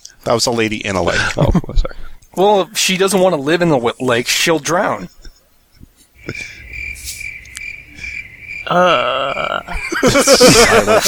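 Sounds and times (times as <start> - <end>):
speech: 0.2 - 5.2, 6.3 - 6.6, 8.7 - 11.0
people laughing loudly: 1.0 - 2.0, 8.7 - 11.0
cricket chirping: 6.2 - 11.0.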